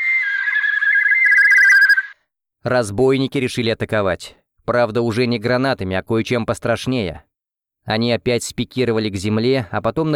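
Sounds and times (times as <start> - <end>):
battle whistle sweeping across the sky: 1.1 - 2.1
speech: 2.6 - 10.1.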